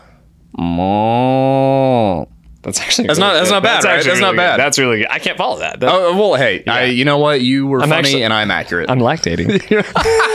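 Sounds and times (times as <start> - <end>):
person imitating a cow mooing: 0.5 - 2.3
speech: 0.6 - 1.1, 2.7 - 10.3
laughter: 9.3 - 10.3.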